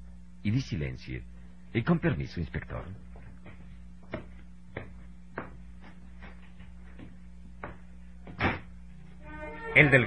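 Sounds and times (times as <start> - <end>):
speech: 0.4 - 3.1, 9.8 - 10.0
soft knocks or steps: 3.1 - 8.8
bedroom door shutting: 8.3 - 8.7.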